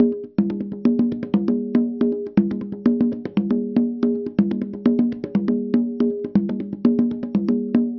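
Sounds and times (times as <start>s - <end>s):
hand drum: 0.0s - 7.9s.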